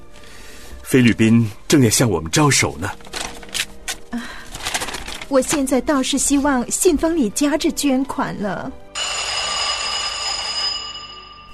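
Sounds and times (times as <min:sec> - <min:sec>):
speech: 0:00.9 - 0:03.1, 0:05.3 - 0:08.8
telephone bell ringing: 0:09.0 - 0:11.5.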